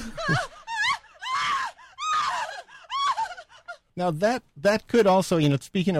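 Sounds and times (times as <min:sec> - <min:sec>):
person gasping: 0:00.0 - 0:00.7
person in a horror film letting out moaning screams: 0:00.0 - 0:03.4
speech: 0:00.3 - 0:00.5, 0:04.0 - 0:05.9.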